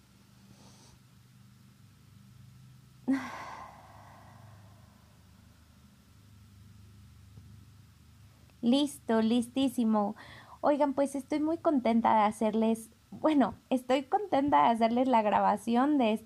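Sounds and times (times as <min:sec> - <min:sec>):
low steady hum: 0:00.0 - 0:16.2
speech: 0:03.1 - 0:03.4, 0:08.6 - 0:16.2
person breathing in: 0:03.1 - 0:05.2, 0:10.2 - 0:10.6.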